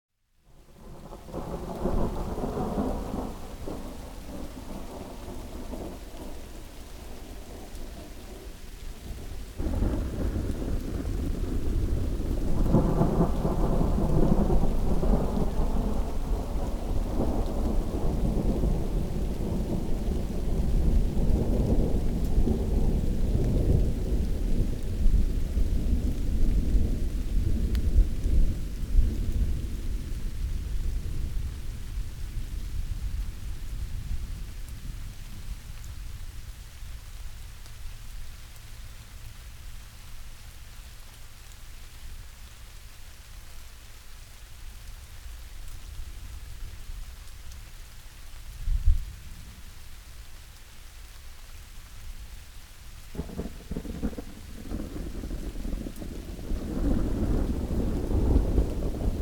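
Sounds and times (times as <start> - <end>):
rain: 0.1 - 59.2
thunder: 0.8 - 6.5, 7.2 - 35.1, 53.1 - 59.2.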